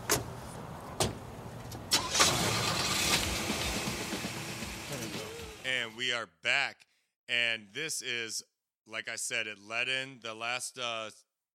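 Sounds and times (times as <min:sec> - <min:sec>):
car engine cranking, starting and idling: 0:01.6 - 0:05.7
speech: 0:05.9 - 0:11.2.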